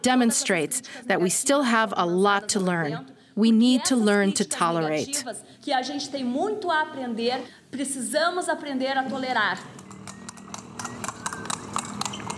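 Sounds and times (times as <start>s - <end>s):
speech: 0.0s - 9.8s
horse hooves clip-clopping pulling a buggy: 9.6s - 12.3s.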